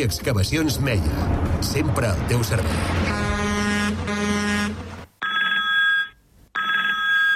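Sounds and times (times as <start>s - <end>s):
speech: 0.0s - 3.5s
loud low droning horn-like blast: 0.8s - 5.1s
telephone ringing: 5.2s - 7.3s.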